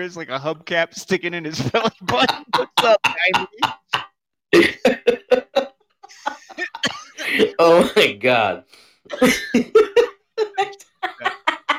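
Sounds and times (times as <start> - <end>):
speech: 0.0 - 3.8, 7.6 - 10.0
hearty laughter: 1.6 - 4.0, 4.6 - 7.6, 9.1 - 11.7
coughing while laughing: 1.8 - 8.2, 9.1 - 11.7.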